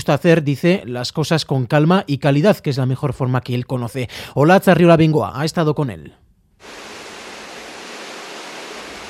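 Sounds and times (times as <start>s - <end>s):
speech: 0.0s - 6.8s
estuary water rushing at a 17th-century watermill: 6.6s - 9.0s.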